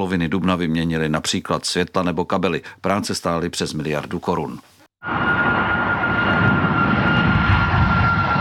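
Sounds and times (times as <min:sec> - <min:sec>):
speech: 0:00.0 - 0:04.8
airplane flying overhead: 0:05.0 - 0:08.3.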